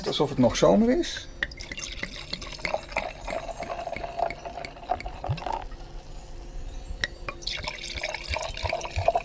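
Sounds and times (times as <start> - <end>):
speech: 0.0 - 1.4
Prosecco sparkling wine pouring into glasses: 1.5 - 6.5, 7.2 - 9.2.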